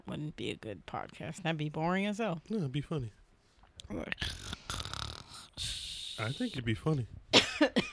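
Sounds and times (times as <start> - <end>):
speech: 0.1 - 3.2, 3.9 - 4.6, 5.6 - 7.9
person imitating loud snoring with a choking snort: 4.2 - 5.8.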